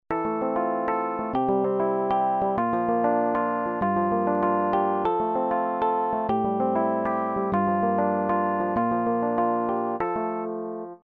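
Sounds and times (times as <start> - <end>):
Rhodes electric piano on Yamaha TG500: 0.1 - 11.0.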